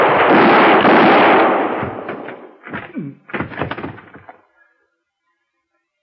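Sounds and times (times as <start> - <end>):
gunshots in a Western shootout: 0.0 - 4.4.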